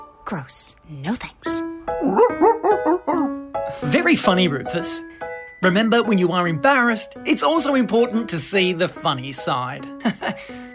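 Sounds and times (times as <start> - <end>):
speech: 0.3 - 3.2, 3.9 - 10.7
dog barking: 2.0 - 3.4
laughter: 10.0 - 10.5.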